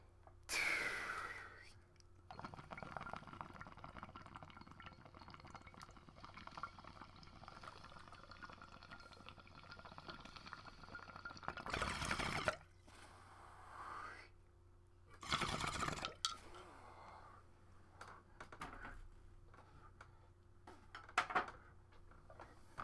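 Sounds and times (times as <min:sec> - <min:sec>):
smoker taking a bubbling gurgling inhale: 0:00.5 - 0:14.4, 0:15.2 - 0:17.4.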